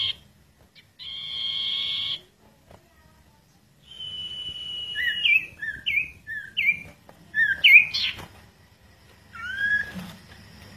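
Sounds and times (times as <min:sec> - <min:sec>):
bird song of long and slurred whistles: 0:00.8 - 0:02.2, 0:03.8 - 0:08.2, 0:09.3 - 0:10.2.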